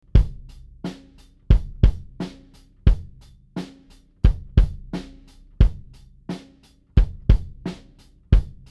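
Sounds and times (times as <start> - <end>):
loud 15cm kick drum: 0.0 - 8.7.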